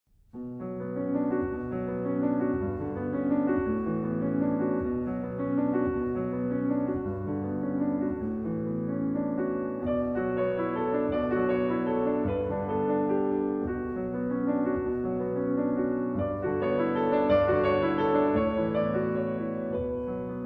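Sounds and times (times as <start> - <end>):
calm piano music: 0.3 - 20.4.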